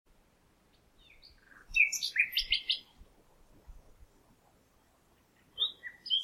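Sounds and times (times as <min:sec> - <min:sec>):
common nightingale Luscinia megarhynchos singing: 0:00.7 - 0:03.0, 0:05.1 - 0:06.2.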